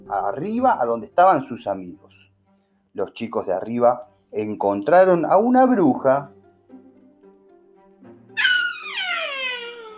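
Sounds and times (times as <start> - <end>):
speech: 0.1 - 2.2, 3.0 - 6.4
children shouting: 8.4 - 9.9.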